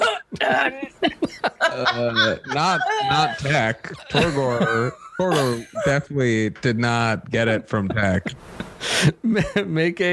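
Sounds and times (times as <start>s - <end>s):
person coughing: 0.0s - 1.4s, 3.1s - 5.7s
speech: 0.3s - 10.1s
laughter: 0.4s - 6.0s, 9.3s - 9.7s.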